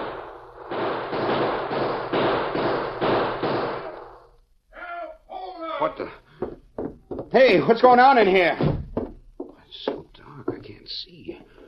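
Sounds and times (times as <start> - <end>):
burst of gunfire inside a bank: 0.0 - 4.2
speech: 7.3 - 8.7.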